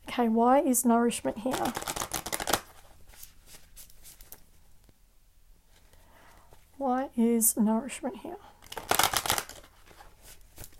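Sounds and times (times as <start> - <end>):
speech: 0.2 - 2.0, 7.2 - 8.5
tarot cards shuffled and drawn from the deck: 1.4 - 4.6, 8.6 - 10.7.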